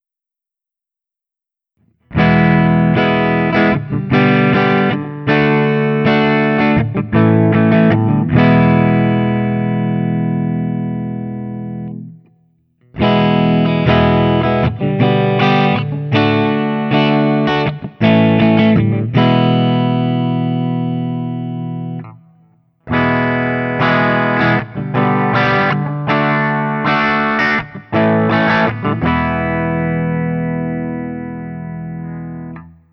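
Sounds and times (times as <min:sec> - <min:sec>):
Guild Burnside Crossbow electric guitar open chords, clean: 0:01.8 - 0:32.9.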